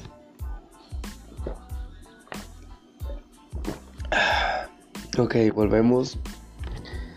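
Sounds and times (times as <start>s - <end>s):
person gulping water: 3.6s - 4.6s
breathy exhale: 4.1s - 4.7s
speech: 5.2s - 6.4s.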